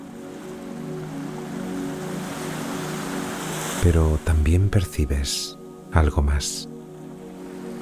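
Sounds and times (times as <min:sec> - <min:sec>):
sea surf washing onto the shore: 0:00.0 - 0:04.2
speech: 0:03.8 - 0:06.7.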